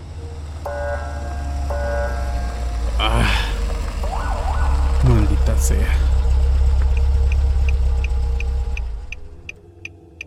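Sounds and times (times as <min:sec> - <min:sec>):
police car siren wailing signaling a driver to stop: 0:00.0 - 0:08.0
low rumble of traffic or engine noise: 0:00.0 - 0:10.1.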